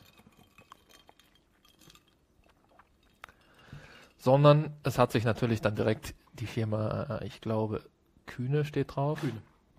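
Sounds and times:
glasses clinking in a toast: 0.0 - 4.3
speech: 4.2 - 9.5.

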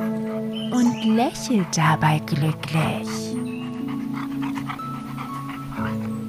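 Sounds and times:
golden retriever mother dog panting: 0.0 - 6.2
sustained tonal background: 0.0 - 6.2
speech: 0.7 - 3.4.

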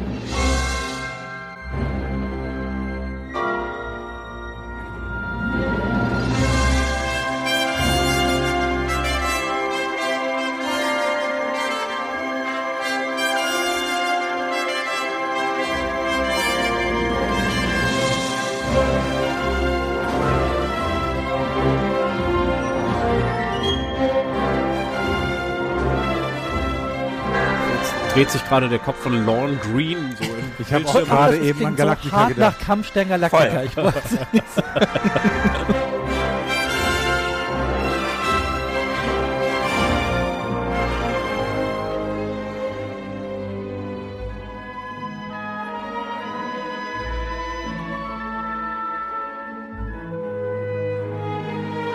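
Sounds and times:
full orchestra with strings and brass playing a video game theme: 0.0 - 51.9
speech: 28.2 - 35.4
laughter: 30.0 - 36.1
choir singing a video game theme: 30.1 - 32.6.

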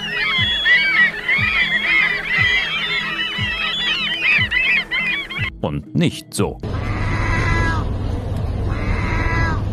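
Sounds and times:
dense chorus of seagull calls: 0.0 - 5.6, 6.7 - 7.9, 8.7 - 9.6
speech: 5.6 - 6.7.

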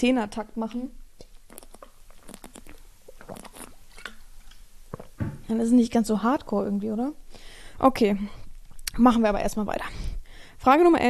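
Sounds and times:
speech: 0.0 - 1.0, 5.5 - 8.4, 9.0 - 11.0
person sipping a drink: 1.2 - 5.3
swallowing: 1.2 - 5.4.

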